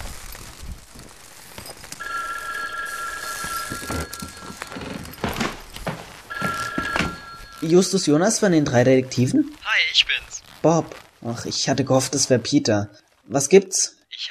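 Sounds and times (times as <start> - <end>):
telephone ringing with a high electronic tone: 2.0 - 10.2
speech: 7.6 - 14.2.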